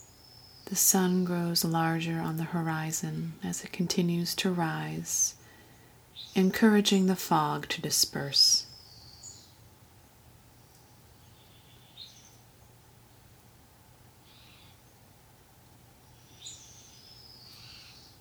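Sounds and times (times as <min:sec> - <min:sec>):
birds chirping in the morning: 0:00.0 - 0:09.7, 0:10.5 - 0:12.7, 0:16.0 - 0:18.1
steady low ambient hum: 0:00.0 - 0:18.1
speech: 0:00.7 - 0:05.4, 0:06.4 - 0:08.7.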